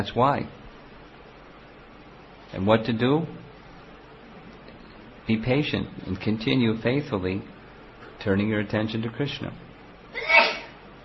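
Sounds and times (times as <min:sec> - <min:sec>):
speech: 0:00.0 - 0:00.6, 0:02.5 - 0:03.4, 0:05.3 - 0:07.5, 0:08.2 - 0:10.4
person sneezing: 0:10.2 - 0:10.8.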